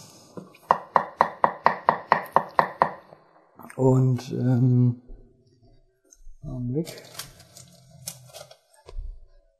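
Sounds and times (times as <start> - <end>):
knife chopping cucumber on a board: 0.7 - 3.0
speech: 3.8 - 5.0, 6.7 - 7.2.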